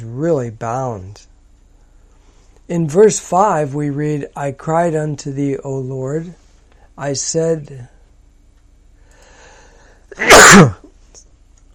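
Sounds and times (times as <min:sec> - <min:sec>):
speech: 0:00.1 - 0:01.3, 0:02.7 - 0:06.4, 0:07.0 - 0:07.9, 0:10.1 - 0:10.8
brief intake of breath: 0:09.0 - 0:10.1
loud sharp sneeze: 0:10.1 - 0:10.9.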